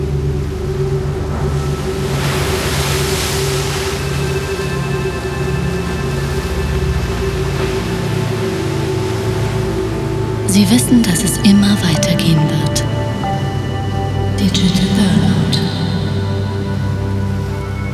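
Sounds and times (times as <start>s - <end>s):
faint tonal hum: 0.0s - 17.9s
low rumbling drone: 0.0s - 17.9s
ocean surf: 0.3s - 17.9s
speech: 10.6s - 12.9s, 14.5s - 15.8s.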